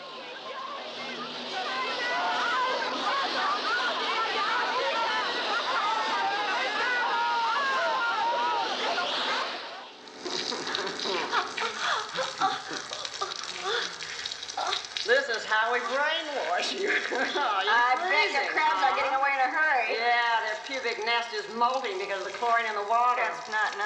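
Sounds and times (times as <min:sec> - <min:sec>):
several voices crying out and shouting: 0:00.0 - 0:23.8
laughter: 0:01.6 - 0:09.5, 0:10.1 - 0:22.6
water spraying from a hose: 0:10.1 - 0:19.0, 0:20.0 - 0:23.8.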